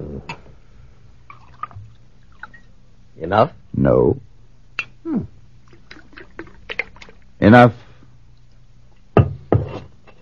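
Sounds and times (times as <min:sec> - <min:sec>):
speech: 0:03.2 - 0:04.3, 0:05.0 - 0:05.3, 0:07.4 - 0:07.8
drink pouring into a cup: 0:05.7 - 0:07.2.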